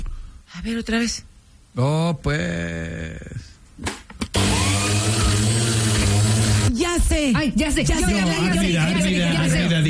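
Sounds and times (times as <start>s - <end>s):
speech: 0.5s - 4.0s, 7.0s - 9.8s
electric blender running: 4.3s - 6.8s.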